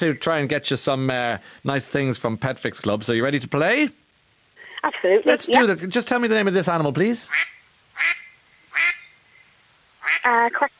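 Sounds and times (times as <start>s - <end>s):
speech: 0.0s - 4.0s, 4.8s - 8.2s, 10.1s - 10.7s
duck quacking: 7.3s - 9.1s, 10.0s - 10.7s.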